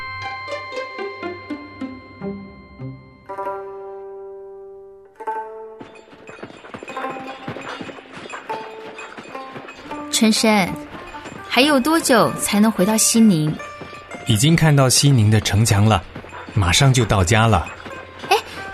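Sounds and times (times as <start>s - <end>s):
sustained tonal music: 0.0s - 18.7s
donkey hooves clip-clopping on a road while carrying a sedan chair: 5.2s - 18.7s
speech: 10.2s - 10.9s, 11.6s - 13.7s, 14.3s - 17.8s.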